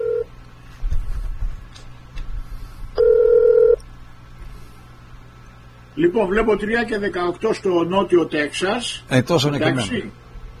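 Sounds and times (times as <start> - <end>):
phone line ringing out with a steady electronic tone: 0.0 - 0.3, 3.0 - 3.8
speech: 6.0 - 10.2.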